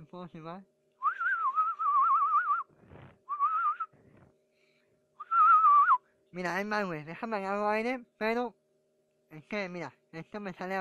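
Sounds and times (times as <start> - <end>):
speech: 0.1 - 0.8, 6.3 - 8.6, 9.3 - 10.8
person whistling a warbling phrase: 1.0 - 3.9, 5.2 - 6.0
soft breathy rustles: 2.7 - 3.3.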